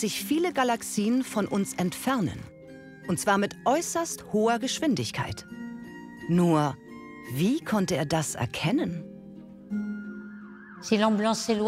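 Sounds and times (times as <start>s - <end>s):
speech: 0.0s - 5.6s, 6.2s - 9.1s, 10.8s - 11.6s
ambulance siren passing with Doppler shift: 10.1s - 11.6s.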